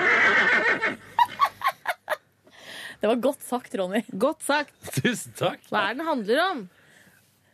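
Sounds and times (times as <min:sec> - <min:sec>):
horse whinnying: 0:00.0 - 0:01.4
laughter: 0:01.1 - 0:02.2
speech: 0:03.0 - 0:06.8.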